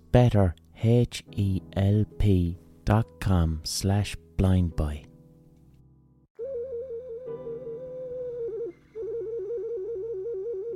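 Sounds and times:
speech: 0.1 - 5.1
ceramic otter-shaped whistle blown through its tail: 6.4 - 10.7.

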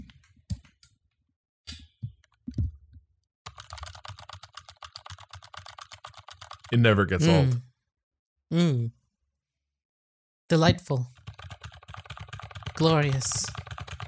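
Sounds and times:
typing on a mechanical keyboard with Gateron Alias switches: 3.5 - 6.8, 11.2 - 14.0
speech: 6.7 - 7.7, 8.5 - 9.0, 10.5 - 11.2, 12.8 - 13.6.

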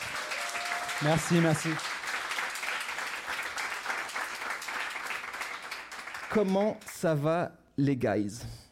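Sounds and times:
live audience applauding to welcome two co-hosts: 0.0 - 7.0
speech: 1.0 - 1.9, 6.3 - 8.6.

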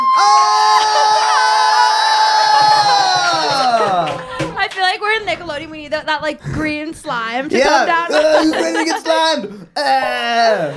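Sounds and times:
audience screaming and cheering: 0.0 - 4.6
laughter: 0.5 - 4.8, 7.7 - 10.7
speech: 5.6 - 10.7.

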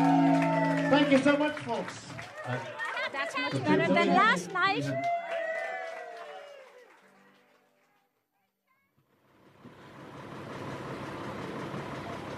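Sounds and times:
laughter: 0.1 - 5.1
speech: 1.1 - 5.1
bus engine idling outside a hotel: 9.1 - 12.3.

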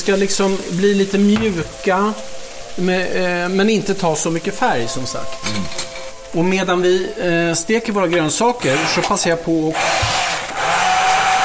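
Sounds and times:
speech: 0.0 - 10.2
blender puréeing canned San Marzano tomatoes: 8.6 - 11.4.

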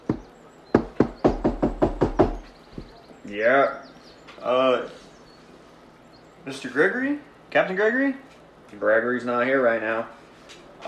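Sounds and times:
knocks on a wooden door at a dock area: 0.1 - 3.0
speech: 3.3 - 5.0, 6.4 - 10.2.

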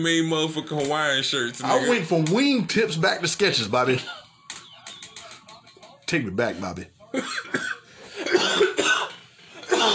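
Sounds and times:
speech: 0.0 - 4.2, 6.1 - 7.6
person coughing in a fit: 7.1 - 9.9.

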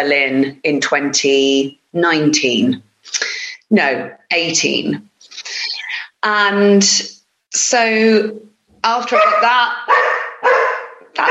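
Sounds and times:
speech: 0.0 - 5.6, 6.2 - 10.6
dog barking: 9.1 - 11.2.

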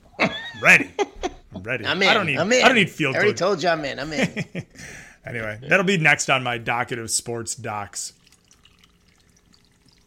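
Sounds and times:
speech: 0.6 - 8.2
drink being poured: 7.7 - 10.0.

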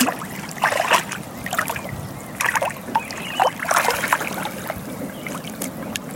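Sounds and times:
dog wading slowly into water sloshing and splashing: 0.0 - 6.1.

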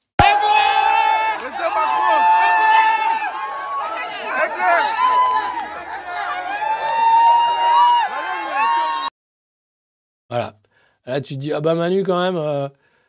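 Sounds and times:
crowd shouting, cheering and chattering at a nightclub party in Africa: 0.2 - 9.1
speech: 11.2 - 12.8.

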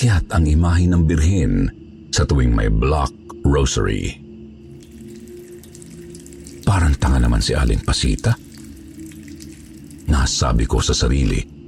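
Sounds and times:
speech: 0.0 - 4.2, 6.7 - 8.4, 10.2 - 11.6
water being scooped and splashing into a basin: 4.7 - 11.4.

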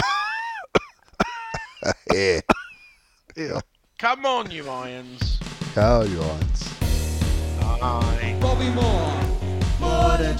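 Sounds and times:
person coughing: 0.0 - 2.9
speech: 1.8 - 2.6, 3.4 - 6.6, 7.6 - 9.3, 9.9 - 10.3.

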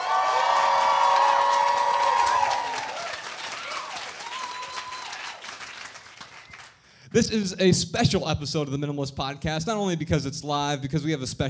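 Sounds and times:
audience whistles and whoops: 0.0 - 5.4
live audience applauding and cheering at a show in Dallas, Texas: 0.0 - 6.9
speech: 7.2 - 11.4.

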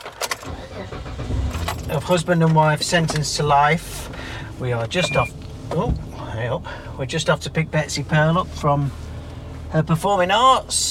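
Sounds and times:
car keys jangling: 0.0 - 3.4
speech: 1.9 - 9.0, 9.7 - 10.8.

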